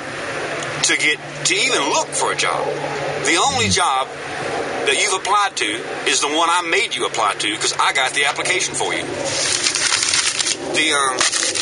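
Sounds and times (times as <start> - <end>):
speech: 0.8 - 9.7, 10.7 - 11.5
faint high squeaky tone: 3.4 - 3.8
paper being crumpled: 9.3 - 10.6, 11.2 - 11.6.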